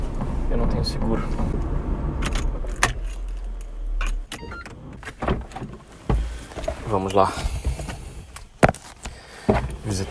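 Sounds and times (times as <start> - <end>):
car engine rumbling while reversing: 0.0 - 10.0
speech: 0.6 - 1.7, 6.9 - 7.6
keys jangling: 2.2 - 4.2.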